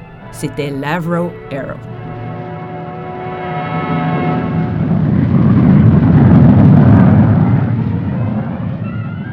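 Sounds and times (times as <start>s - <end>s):
speech: 0.3s - 2.0s
supersonic jet interceptor aircraft roaring overhead: 1.9s - 9.3s.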